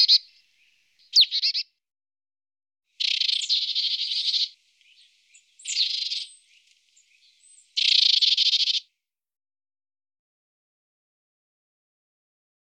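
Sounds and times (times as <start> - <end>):
marsh tit calls: 0.0 - 1.6, 3.0 - 8.9.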